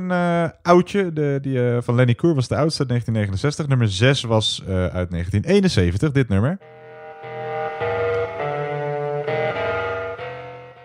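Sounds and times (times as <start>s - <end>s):
speech: 0.0s - 6.8s
early-1970s rock song with distorted instrumentation: 6.9s - 10.8s.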